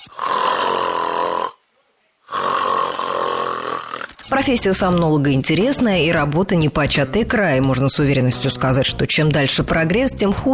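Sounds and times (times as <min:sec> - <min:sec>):
sleeping person snoring loudly: 0:00.0 - 0:01.6, 0:02.2 - 0:04.3
speech: 0:04.3 - 0:10.5.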